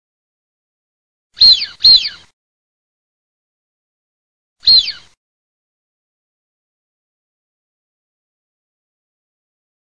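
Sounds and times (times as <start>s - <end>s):
male wigeon calling: 1.4s - 2.3s, 4.6s - 5.2s.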